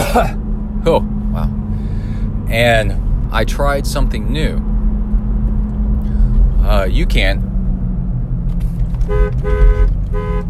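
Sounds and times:
low rumble of engine and road noise: 0:00.0 - 0:10.4
speech: 0:00.1 - 0:01.6, 0:02.5 - 0:04.7, 0:06.6 - 0:07.4, 0:09.1 - 0:10.4
car horn honking: 0:09.0 - 0:10.4.

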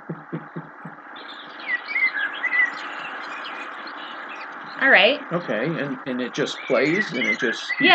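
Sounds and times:
soft low thumps: 0:00.0 - 0:01.0
birds chirping: 0:00.0 - 0:07.9
laughter: 0:00.1 - 0:00.9, 0:05.3 - 0:07.9
speech: 0:04.8 - 0:07.9.

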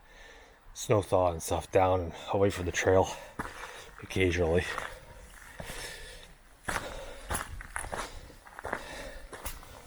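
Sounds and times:
faint outdoor background: 0:00.0 - 0:09.8
speech: 0:00.8 - 0:04.9, 0:05.6 - 0:05.8
footsteps crunching up a hiking trail: 0:02.5 - 0:09.8.

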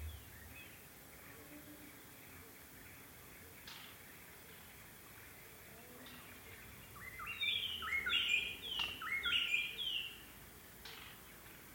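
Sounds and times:
background noise: 0:00.0 - 0:11.7
White-browed robin-chat singing in the Okavango Panhandle: 0:07.0 - 0:10.1.

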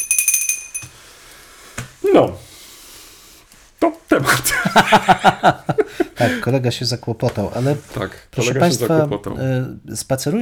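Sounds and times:
small handbell ringing rapidly: 0:00.0 - 0:01.0
speech: 0:02.0 - 0:02.4, 0:04.1 - 0:10.4
laughter: 0:04.1 - 0:06.6.

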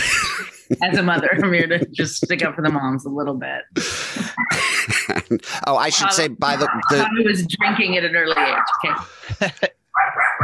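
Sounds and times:
laughter: 0:00.0 - 0:02.8, 0:03.8 - 0:09.8
speech: 0:00.7 - 0:09.8
dog barking at an arriving package delivery: 0:06.4 - 0:07.1, 0:08.4 - 0:09.0, 0:10.0 - 0:10.4.

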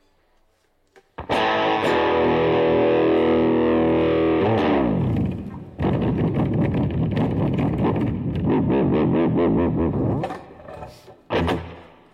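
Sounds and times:
slightly out-of-tune electric guitar with distortion and reverb: 0:01.2 - 0:10.6, 0:11.3 - 0:12.1.

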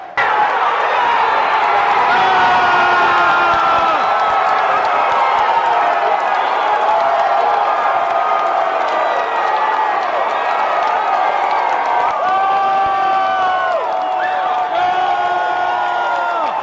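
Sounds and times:
large stadium crowd cheering, whooping and shouting: 0:00.0 - 0:16.6.

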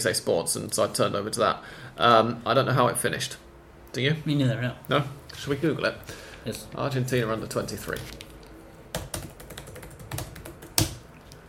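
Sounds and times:
speech: 0:00.0 - 0:08.2
typing on a computer keyboard: 0:08.9 - 0:11.0.

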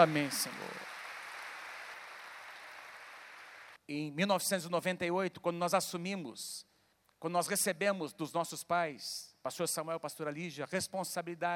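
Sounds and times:
speech: 0:00.0 - 0:00.8, 0:03.9 - 0:11.5
congregation applauding: 0:00.0 - 0:03.8.

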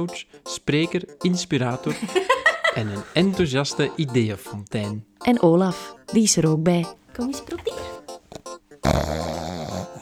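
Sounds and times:
speech: 0:00.0 - 0:08.0
laughter: 0:01.9 - 0:03.3
dog snorting: 0:07.5 - 0:10.0.

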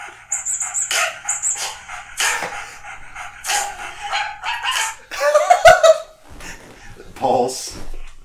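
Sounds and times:
dog yelping and whining: 0:00.3 - 0:05.1
dog barking: 0:03.5 - 0:05.0
laughter: 0:04.7 - 0:06.2.

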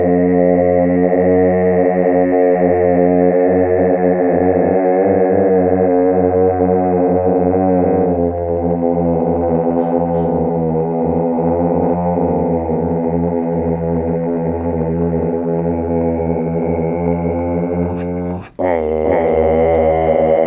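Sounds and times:
phased throat singing: 0:00.0 - 0:20.4.

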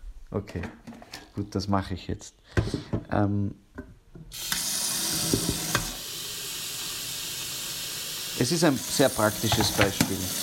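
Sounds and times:
speech: 0:00.3 - 0:03.6, 0:08.4 - 0:10.4
water running into an electric kettle: 0:04.3 - 0:10.4.

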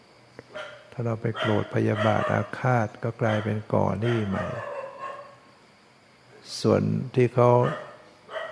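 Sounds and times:
hiss: 0:00.0 - 0:08.4
speech: 0:00.4 - 0:04.7, 0:06.5 - 0:07.9
dog barking: 0:00.5 - 0:00.8, 0:01.4 - 0:02.5, 0:03.3 - 0:05.4, 0:07.6 - 0:08.4.

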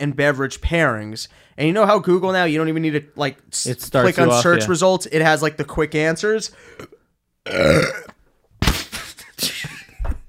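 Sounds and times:
speech: 0:00.0 - 0:08.1
burp after drinking lager beer: 0:06.7 - 0:08.2.

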